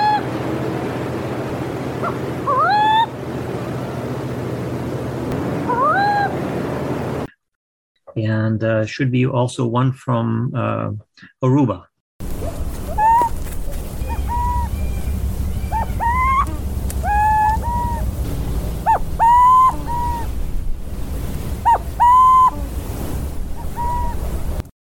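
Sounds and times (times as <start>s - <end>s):
owl hooting in Brazil: 0.0s - 0.3s, 2.0s - 3.2s, 5.6s - 6.4s, 12.2s - 18.2s, 18.8s - 20.4s, 21.6s - 22.9s, 23.5s - 24.6s
steady roar of surf: 0.0s - 7.3s, 12.2s - 24.7s
wind: 0.0s - 7.3s, 12.2s - 24.7s
speech: 8.2s - 11.9s.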